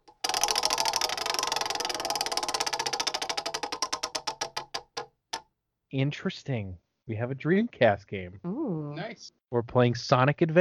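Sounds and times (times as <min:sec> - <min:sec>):
prize wheel spinning, pointer clicking against the pegs: 0:00.0 - 0:05.4
speech: 0:05.9 - 0:10.5.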